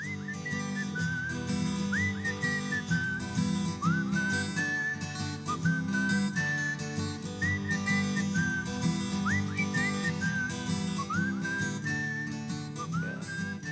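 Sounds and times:
whistled melody: 0.0 - 13.6.

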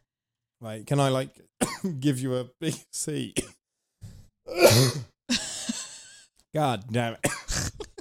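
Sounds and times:
speech: 0.6 - 3.6, 4.5 - 5.1, 6.5 - 7.7
person coughing raspy coughs: 1.6 - 1.9, 4.5 - 5.1, 7.2 - 7.9.

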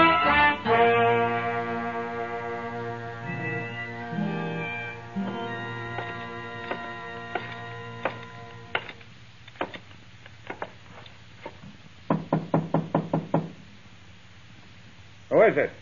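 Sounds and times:
low hum: 0.1 - 15.8
marshal knocking on a wooden door: 12.1 - 13.6
speech: 15.5 - 15.8.

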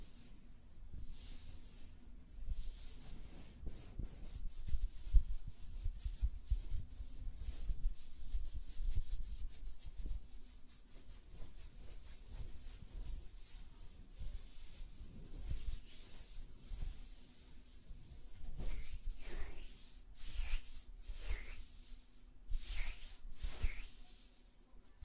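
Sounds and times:
bright hissy brushing: 0.0 - 25.0
soft fingertip rubbing and fluttering: 10.8 - 24.4.

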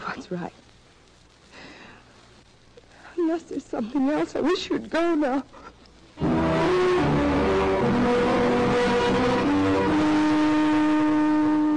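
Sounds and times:
speech: 0.2 - 0.6, 3.3 - 6.3
car engine starting and revving as it pulls away from a ranch: 6.2 - 11.5.

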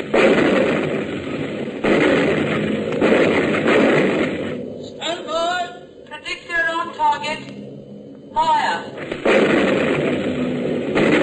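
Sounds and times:
anti-aircraft gun firing: 0.0 - 4.8, 8.9 - 11.2
roaring crackling noise: 0.0 - 11.2.

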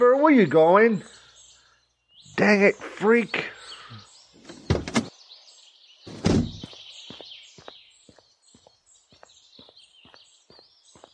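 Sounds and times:
speech: 0.0 - 1.1, 2.4 - 3.6
car door unlatching: 4.4 - 5.1, 6.1 - 6.6
car door swinging shut with a heavy thud: 6.1 - 6.7.

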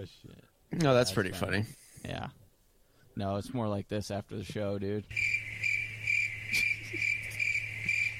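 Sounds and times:
speech: 0.1 - 2.4, 3.2 - 5.4
crickets chirping: 5.1 - 8.1.

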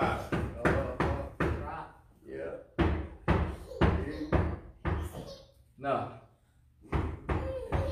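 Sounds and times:
fist knocking on a door: 0.0 - 1.8, 2.8 - 5.2, 6.8 - 7.8.

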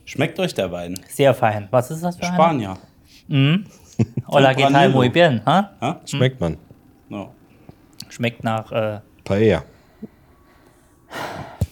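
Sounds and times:
speech: 0.1 - 7.4, 8.1 - 10.1
laughter: 3.6 - 6.5
loud breathy puffing exhale: 9.8 - 11.7.

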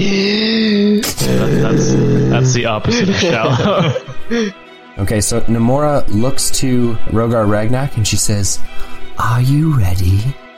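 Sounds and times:
voice imitating loud heavy breathing: 0.0 - 3.3, 3.9 - 4.6
speech: 1.7 - 10.4
laughter: 2.6 - 4.5.

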